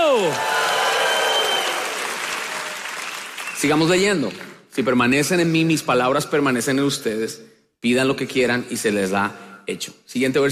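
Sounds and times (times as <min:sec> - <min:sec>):
crowd applauding to the Lord: 0:00.0 - 0:04.5
speech: 0:00.2 - 0:00.5, 0:03.6 - 0:10.4.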